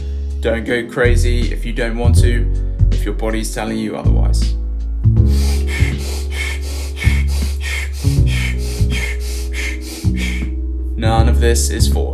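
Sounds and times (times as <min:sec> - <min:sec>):
low sustained music bed: 0:00.2 - 0:12.1
speech: 0:00.4 - 0:04.6, 0:11.0 - 0:12.1
rapid forceful breathing in a guided controlled-breathing exercise: 0:05.2 - 0:10.6.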